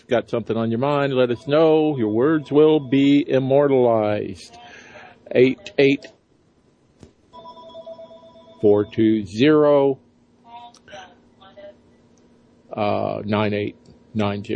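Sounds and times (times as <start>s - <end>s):
speech: 0.0s - 4.6s, 5.3s - 6.2s, 8.6s - 10.0s, 12.8s - 14.5s
telephones ringing in a busy office: 1.1s - 3.7s, 7.4s - 9.2s.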